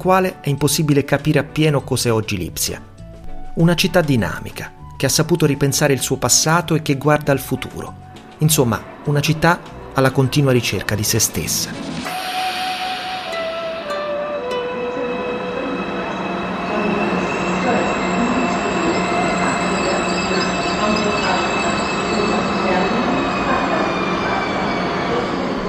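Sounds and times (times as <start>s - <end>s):
speech: 0.0s - 2.9s, 3.6s - 12.1s
train rolling along rails from Berlin to Leipzig: 7.9s - 25.6s
high metallic whines and squealing tones of train: 11.3s - 25.6s.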